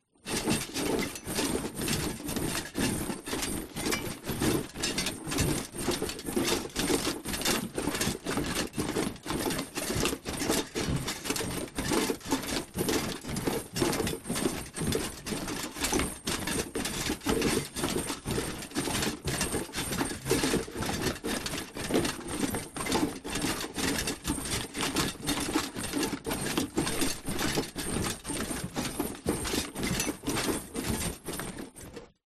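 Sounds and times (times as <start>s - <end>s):
troops marching in armor with metal clatter: 0.2s - 32.2s.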